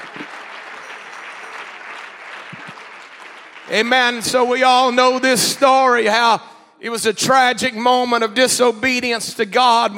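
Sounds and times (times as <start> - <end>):
audience clapping hands: 0.0 - 5.7
speech: 3.7 - 9.9.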